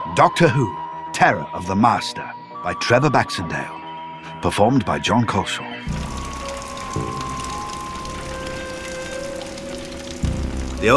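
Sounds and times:
speech: 0.2s - 6.2s, 10.8s - 10.9s
rain dripping through holes in a roof onto a concrete floor: 5.9s - 10.9s.

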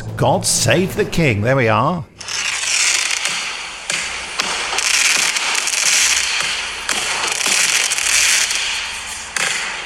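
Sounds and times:
speech: 0.2s - 2.1s
fireworks crackling and popping: 2.2s - 8.8s.

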